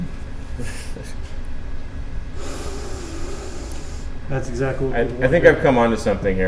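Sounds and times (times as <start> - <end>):
sniffing beer aroma through a face mask: 2.4 - 4.2
speech: 4.3 - 6.4.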